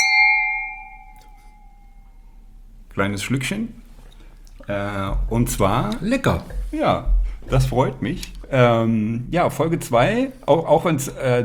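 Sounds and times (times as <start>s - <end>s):
glasses clinking in a toast: 0.0s - 2.0s
speech: 3.0s - 3.8s, 4.7s - 11.4s.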